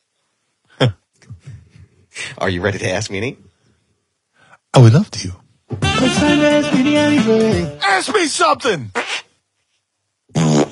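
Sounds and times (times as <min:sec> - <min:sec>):
speech: 0:00.8 - 0:01.0, 0:02.4 - 0:03.5, 0:04.8 - 0:05.4, 0:06.0 - 0:09.2
loud buzzy fart sound effect: 0:09.0 - 0:09.3, 0:10.3 - 0:10.7.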